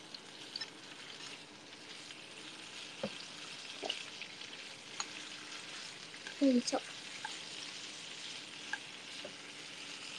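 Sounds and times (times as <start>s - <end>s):
pre-cooked chicken breast and broccoli sizzling in a pan: 0.0s - 10.1s
speech: 6.4s - 6.9s.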